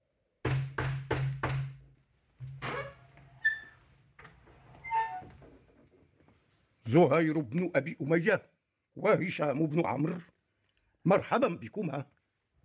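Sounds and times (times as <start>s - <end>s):
loud knocking on a door: 0.4s - 1.8s
speech: 6.9s - 10.3s, 11.0s - 12.6s.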